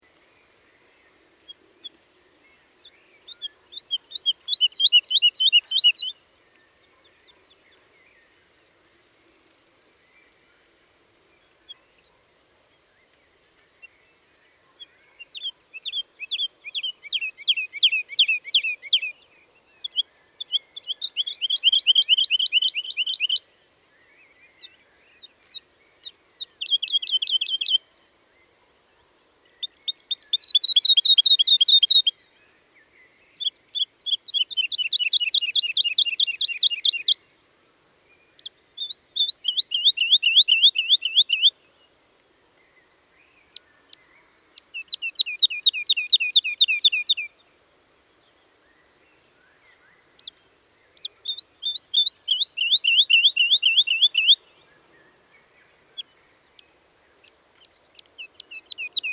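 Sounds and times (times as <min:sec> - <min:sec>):
woodlark singing: 0:03.1 - 0:06.2, 0:15.2 - 0:23.5, 0:24.6 - 0:27.9, 0:29.5 - 0:32.2, 0:33.4 - 0:37.2, 0:38.3 - 0:41.6, 0:43.4 - 0:47.4, 0:49.4 - 0:59.1.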